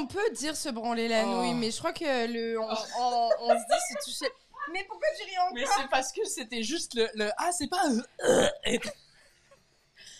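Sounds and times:
speech: 0:00.0 - 0:09.0
laughter: 0:02.7 - 0:04.3
loud guttural burp: 0:08.2 - 0:08.8.

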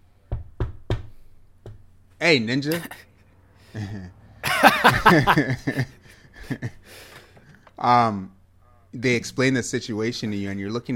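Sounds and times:
firm knocking on a door: 0:00.3 - 0:01.9
speech: 0:02.2 - 0:03.1, 0:03.7 - 0:07.0, 0:07.8 - 0:10.9
laughter: 0:03.7 - 0:06.8.

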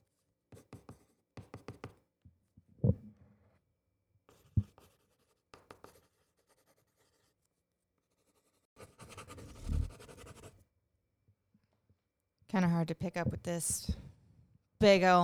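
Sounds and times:
pencil scribbling on paper: 0:04.3 - 0:10.6
speech: 0:12.5 - 0:14.0, 0:14.8 - 0:15.2.

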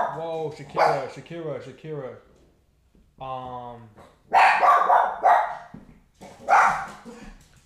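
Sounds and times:
dog barking: 0:00.0 - 0:01.2, 0:04.3 - 0:07.1
speech: 0:00.2 - 0:02.3, 0:03.2 - 0:05.3.

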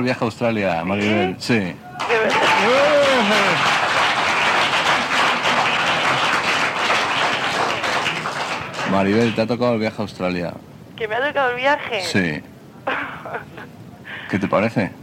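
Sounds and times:
speech: 0:00.0 - 0:03.8, 0:08.9 - 0:15.0
crowd applauding a woman who has won a trip: 0:00.9 - 0:09.5
raised voice or cheer: 0:01.0 - 0:03.8
laughter: 0:01.1 - 0:04.2, 0:12.8 - 0:13.8.

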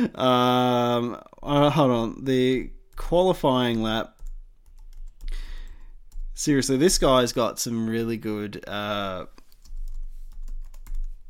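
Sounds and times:
speech: 0:00.0 - 0:04.2, 0:06.4 - 0:09.4
rapid computer keyboard typing: 0:04.1 - 0:06.5, 0:09.4 - 0:11.2.

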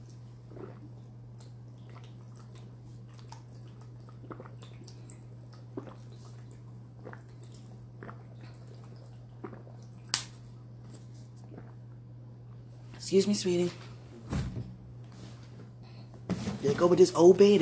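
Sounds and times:
person drinking water: 0:00.0 - 0:12.1
steady low electrical hum: 0:00.0 - 0:17.6
sharp lip smack: 0:10.1 - 0:10.4
speech: 0:13.1 - 0:13.8, 0:16.8 - 0:17.6.

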